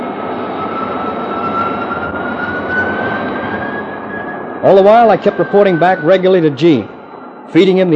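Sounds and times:
F-92K jet engine roar in flight: 0:00.0 - 0:07.9
speech: 0:04.6 - 0:06.9, 0:07.5 - 0:07.9.

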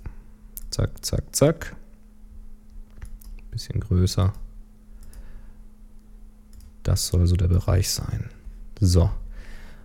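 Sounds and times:
low steady electrical hum: 0:00.0 - 0:09.8
speech: 0:00.8 - 0:01.8, 0:03.6 - 0:04.4, 0:06.9 - 0:09.2
computer mouse clicking: 0:02.9 - 0:03.5, 0:04.3 - 0:05.3, 0:06.5 - 0:06.8.

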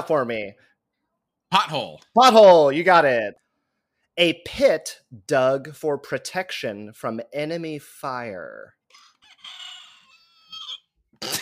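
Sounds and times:
speech: 0:00.0 - 0:00.7, 0:01.5 - 0:03.4, 0:04.2 - 0:08.8
battery-powered toy rooster crowing with battery dying: 0:08.9 - 0:10.8.

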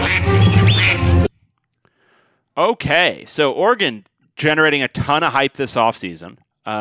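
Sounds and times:
duck quacking sound effect: 0:00.0 - 0:01.3
speech: 0:02.6 - 0:06.8.

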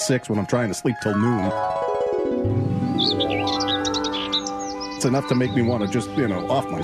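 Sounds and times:
speech: 0:00.0 - 0:03.7, 0:05.0 - 0:06.8
birds chirping: 0:00.0 - 0:06.8
low harmonic drone: 0:01.5 - 0:06.8.

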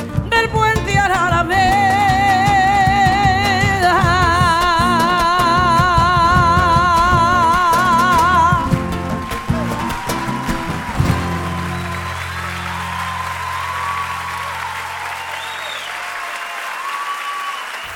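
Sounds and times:
live song in a theater with instrumental tones over a steady beat: 0:00.0 - 0:13.3
loud dense applause from the audience: 0:08.4 - 0:17.9.

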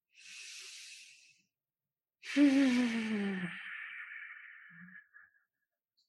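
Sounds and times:
deep breath in and out during a guided meditation: 0:00.1 - 0:01.5, 0:02.2 - 0:05.5.

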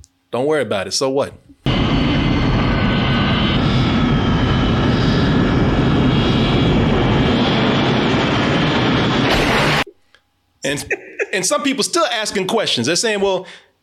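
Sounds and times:
speech: 0:00.3 - 0:01.9, 0:10.6 - 0:13.7
airplane engines powering up for takeoff: 0:01.7 - 0:09.8.

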